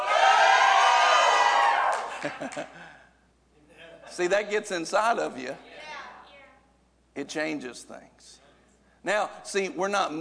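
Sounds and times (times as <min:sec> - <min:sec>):
audience joyful shouting and cheering: 0:00.0 - 0:02.2
laughter: 0:02.0 - 0:03.1
speech: 0:02.2 - 0:02.8, 0:04.1 - 0:05.7, 0:07.2 - 0:08.4, 0:09.0 - 0:10.2.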